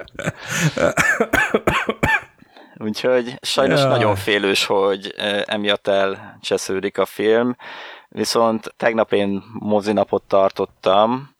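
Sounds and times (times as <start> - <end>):
speech: 0.0 - 1.3, 2.9 - 11.3
person coughing harshly: 0.0 - 2.4, 3.7 - 4.3.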